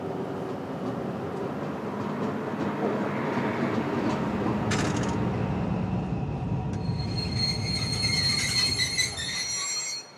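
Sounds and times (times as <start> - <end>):
train heading toward Wilhelmshaven rumbling along rails through a station: 0.0 - 10.1
train wheels squealing loud and high: 6.8 - 10.1.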